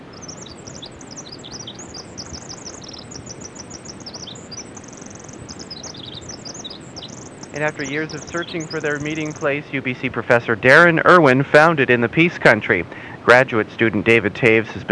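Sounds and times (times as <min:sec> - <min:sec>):
Western winter wren song with twittering notes and buzzy trills: 0:00.0 - 0:10.1
steady low background noise: 0:00.0 - 0:14.9
speech: 0:07.6 - 0:14.9.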